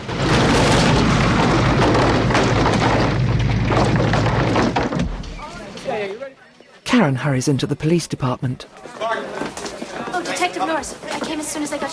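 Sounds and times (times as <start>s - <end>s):
house exploding into flames and collapsing with booming roar: 0.0s - 5.6s
speech: 7.0s - 9.3s, 10.4s - 11.9s.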